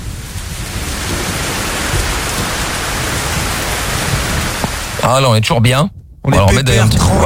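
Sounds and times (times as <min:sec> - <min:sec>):
heavy rain from a thunderstorm heard from inside a car: 0:00.0 - 0:05.1
low rumbling drumming of thunderstorm rain: 0:00.0 - 0:07.2
speech: 0:05.1 - 0:07.2.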